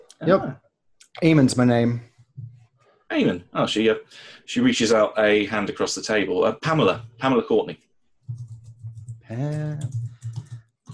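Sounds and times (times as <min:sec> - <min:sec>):
speech: 0:00.2 - 0:00.6, 0:01.2 - 0:02.1, 0:03.1 - 0:08.4, 0:09.3 - 0:10.0
computer keyboard typing: 0:08.2 - 0:10.9.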